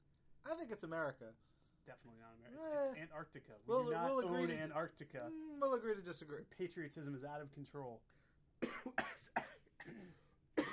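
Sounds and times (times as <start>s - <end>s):
speech: 0.5s - 8.2s
person coughing: 8.6s - 10.7s.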